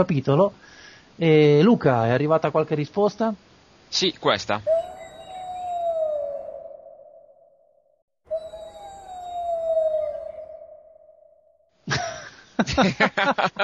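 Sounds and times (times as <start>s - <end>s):
speech: 0.0s - 4.8s, 12.7s - 13.6s
coyote howling below a house: 4.6s - 7.7s, 8.3s - 11.6s
laughter: 11.9s - 13.6s.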